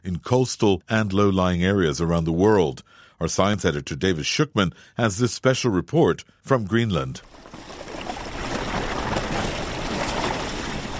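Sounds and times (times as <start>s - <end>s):
speech: 0.1s - 7.6s
fishing boat churning through water in an icy fjord: 7.2s - 10.9s.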